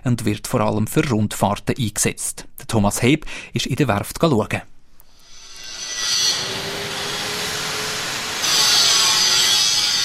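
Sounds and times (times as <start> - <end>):
speech: 0.0 - 4.7
grinding in a large shipyard hall building a passenger ship: 5.1 - 10.0
welding in a shipyard hall: 5.1 - 10.0
hammering in a shipyard hall: 5.4 - 10.0.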